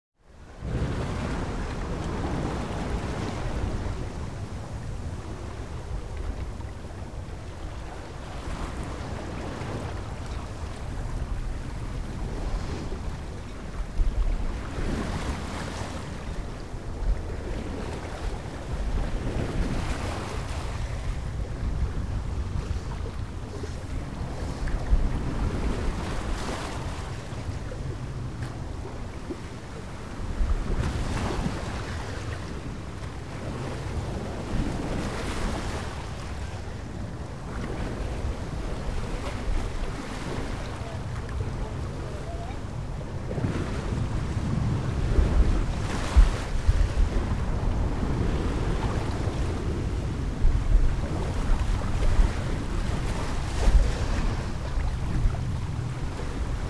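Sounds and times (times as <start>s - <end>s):
waves around a sailboat: 0.2s - 56.6s
sailboat general atmosphere: 1.0s - 56.6s.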